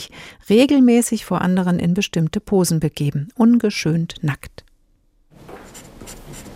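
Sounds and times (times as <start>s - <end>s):
speech: 0.0s - 4.6s
pencils scratching on paper while drawing: 5.4s - 6.5s.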